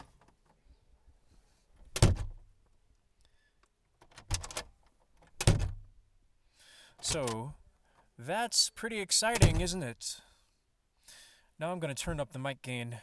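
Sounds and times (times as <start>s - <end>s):
door shut inside a very tight space with boomy thud: 1.9s - 2.4s, 4.2s - 4.7s, 5.3s - 6.0s, 9.4s - 9.8s
speech: 7.1s - 7.6s, 8.2s - 10.3s, 11.6s - 13.0s.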